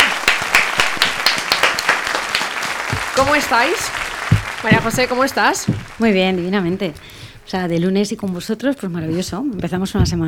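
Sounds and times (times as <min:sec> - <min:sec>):
audience applause: 0:00.0 - 0:06.8
speech: 0:03.2 - 0:04.0, 0:04.6 - 0:10.2.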